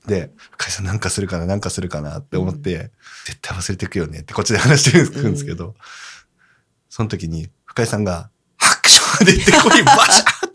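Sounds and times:
speech: 0.1 - 6.2, 6.9 - 10.3
laughter: 4.6 - 5.6, 9.2 - 10.5
person imitating a sneeze: 5.0 - 5.6.

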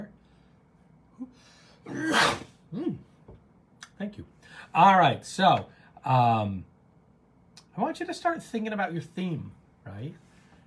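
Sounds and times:
loud sneeze: 1.8 - 3.0
speech: 1.9 - 3.0, 4.0 - 6.7, 7.8 - 10.2.

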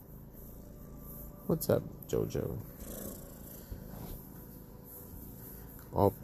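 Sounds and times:
speech: 1.5 - 2.7, 6.0 - 6.2
cat purring: 2.4 - 4.8.

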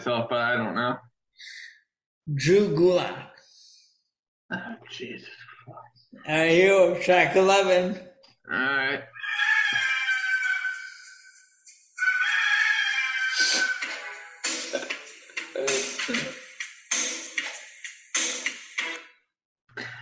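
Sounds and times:
speech: 0.0 - 1.6, 2.3 - 3.3, 4.5 - 9.8, 15.6 - 16.4
drawn-out rooster crows in entrance theme song: 9.2 - 11.4, 12.0 - 14.0
punchy rhythmic accented hits of wrestler's entrance theme song: 13.3 - 19.0.

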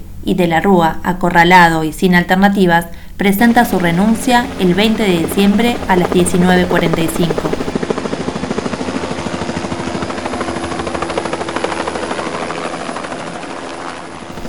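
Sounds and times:
speech: 0.2 - 7.6
helicopter rotor blades thumping: 3.2 - 14.4.

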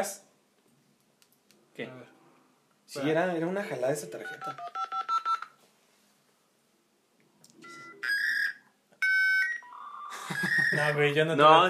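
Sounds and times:
speech: 0.0 - 0.2, 1.8 - 2.1, 2.9 - 4.8, 10.7 - 11.6
dial-up modem touch-tone dialing beeps: 4.1 - 5.5, 7.6 - 11.0
dial-up modem warbling electronic chirps: 9.5 - 11.0
laughter: 10.1 - 11.0.

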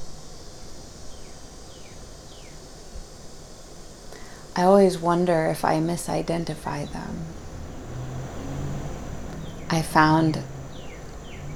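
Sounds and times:
cicadas droning: 0.0 - 11.5
soft descending whines: 4.1 - 11.5
speech: 4.6 - 7.4, 9.7 - 10.5.

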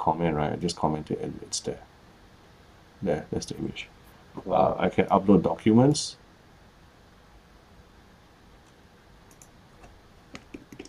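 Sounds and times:
speech: 0.0 - 1.9, 3.0 - 6.2
computer mouse clicking: 8.6 - 10.8.

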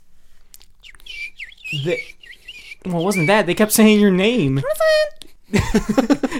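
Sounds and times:
birds chirping in trees across a river: 0.6 - 5.1
bright sweeping whistled bird call: 0.8 - 3.9
speech: 1.7 - 2.2, 2.8 - 6.3.

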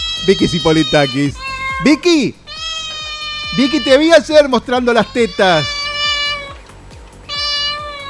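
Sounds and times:
faint rhythmic rumble: 0.0 - 8.0
house cat meowing: 0.0 - 8.0
speech: 0.2 - 2.4, 3.5 - 5.8.

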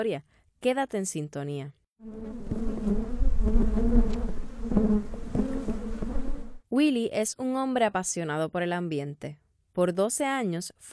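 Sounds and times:
speech: 0.0 - 5.2, 6.8 - 10.9
many honey bees buzzing: 2.0 - 6.6.

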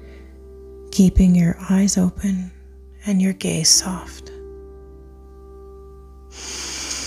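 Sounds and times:
slow deep breath drawn in: 0.0 - 0.6, 6.3 - 7.0
speech: 1.0 - 4.3.

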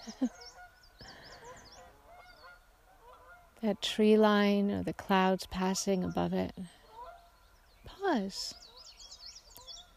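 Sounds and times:
speech: 0.0 - 0.5, 3.6 - 6.8, 8.1 - 8.6
flock of geese honking: 0.0 - 3.6, 6.0 - 7.4
open outdoor noise: 0.0 - 9.9.

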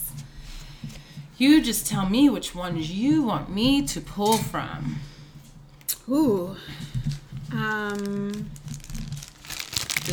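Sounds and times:
speech: 1.4 - 5.1, 6.1 - 8.6
plastic bag crinkling: 7.5 - 10.1.

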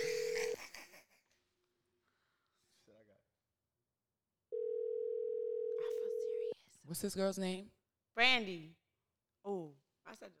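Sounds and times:
electronic phone ringing tone: 0.0 - 0.6, 4.5 - 6.6
speech: 6.9 - 8.8, 9.4 - 10.3.

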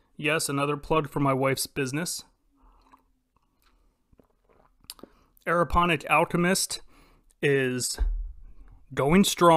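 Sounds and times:
speech: 0.2 - 2.3, 5.5 - 6.8, 7.4 - 8.2, 8.9 - 9.5
person sipping tea: 2.6 - 5.4.

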